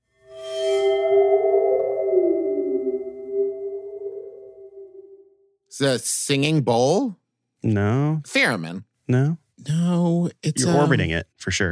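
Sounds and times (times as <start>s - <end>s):
waterphone metal instrument with water sloshing inside, wobbling tone: 0.1s - 5.2s
speech: 5.8s - 11.7s.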